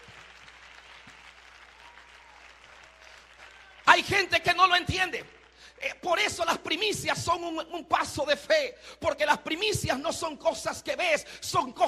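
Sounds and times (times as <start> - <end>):
audience applause: 0.0 - 5.7
speech: 4.0 - 11.8.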